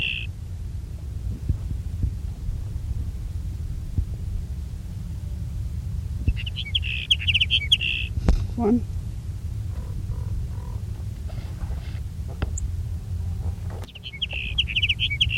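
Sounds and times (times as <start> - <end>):
sage sparrow song: 0.0 - 0.4, 6.2 - 8.7, 9.5 - 12.8, 13.8 - 15.3
steady low hum: 0.0 - 15.3
speech: 8.6 - 9.0.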